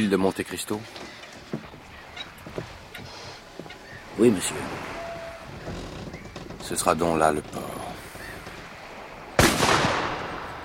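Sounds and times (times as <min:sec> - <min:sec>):
speech: 0:00.0 - 0:01.2, 0:04.2 - 0:05.0, 0:06.7 - 0:07.8
rifle shot fired from land as a signal: 0:09.4 - 0:10.6.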